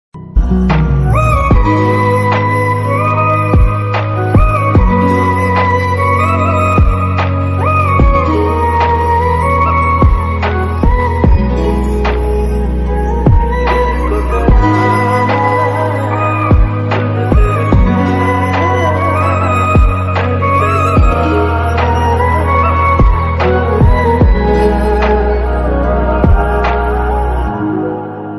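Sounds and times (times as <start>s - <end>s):
sad flute ringtone music: 0.4s - 28.3s.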